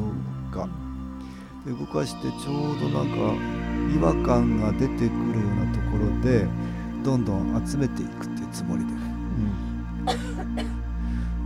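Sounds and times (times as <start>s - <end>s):
speech: 0.6s - 0.8s, 1.6s - 10.7s
person coughing: 10.1s - 10.8s.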